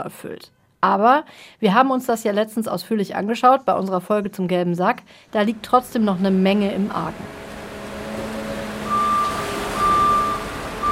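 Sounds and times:
speech: 0.0s - 7.4s
constant low rumble of recycling sorting plant machinery: 5.4s - 10.9s
truck reversing beeps at a recycling sorting plant: 6.6s - 10.9s.

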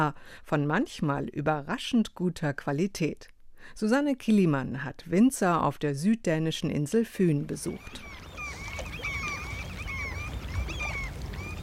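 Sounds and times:
speech: 0.0s - 8.3s
low rumble of wind and water: 7.4s - 11.6s
seagulls calling over harbour: 7.6s - 11.6s.

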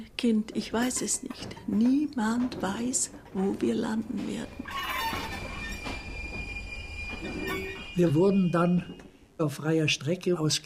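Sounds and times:
speech: 0.0s - 5.0s, 8.0s - 10.6s
freight train of cattle wagons running on rails: 0.2s - 9.4s
freight train wheel squeal: 4.1s - 9.2s.

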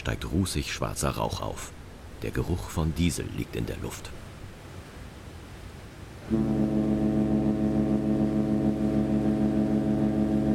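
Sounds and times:
speech: 0.0s - 4.2s, 6.3s - 6.6s
diesel harbour ferry horn blast pulling away from a Hong Kong pier: 6.2s - 10.5s.

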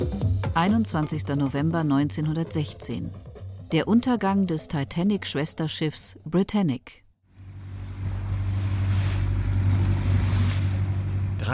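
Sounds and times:
speech: 0.0s - 7.0s
engines of half a dozen boats at sea off Kea droning: 7.3s - 11.5s
wind hissing at sea: 7.6s - 11.3s
broad wash of sea water: 7.8s - 11.3s.

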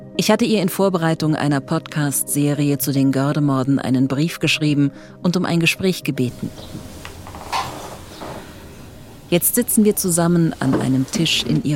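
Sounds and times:
speech: 0.2s - 7.0s, 9.3s - 11.7s
wooden chair creaking: 6.3s - 11.7s.

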